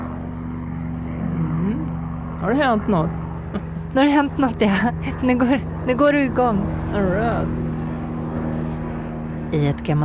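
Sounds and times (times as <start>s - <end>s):
helicopter flying overhead with rotor throb: 0.0s - 10.0s
speech: 2.4s - 7.6s, 9.5s - 10.0s.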